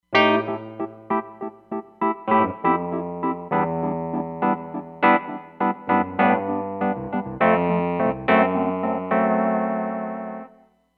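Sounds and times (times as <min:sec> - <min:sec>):
Wurly electric piano on a Roland Fantom XR: 0:00.0 - 0:10.6.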